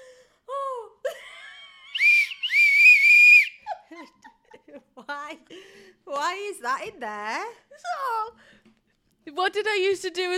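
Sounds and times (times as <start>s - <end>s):
whistle blown in loud shrill blasts: 2.0s - 3.6s
speech: 5.1s - 8.6s, 9.2s - 10.3s.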